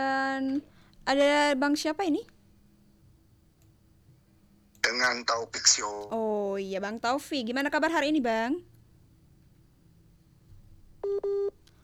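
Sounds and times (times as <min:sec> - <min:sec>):
speech: 0:00.0 - 0:02.4, 0:04.9 - 0:08.7
telephone line connecting beeps: 0:11.0 - 0:11.6.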